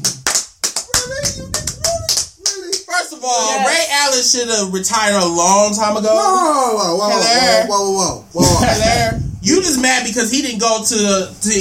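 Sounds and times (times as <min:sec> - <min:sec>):
slow soft hand claps: 0:00.0 - 0:02.9
speech: 0:03.2 - 0:11.6.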